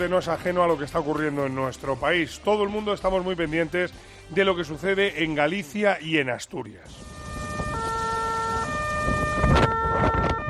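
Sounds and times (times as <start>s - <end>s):
speech: 0.0s - 7.1s
ambulance and fire engine sirens wailing: 6.9s - 10.4s.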